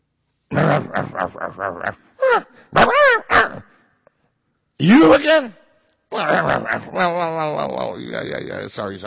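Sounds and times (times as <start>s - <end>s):
man's voice imitating a dog barking: 0.5s - 3.7s, 6.1s - 7.4s
speech: 0.8s - 3.7s, 4.8s - 9.0s.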